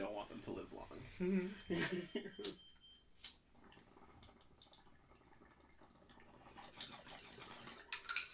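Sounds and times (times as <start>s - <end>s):
speech: 1.2s - 2.6s
water poured out of a bong: 3.5s - 8.3s.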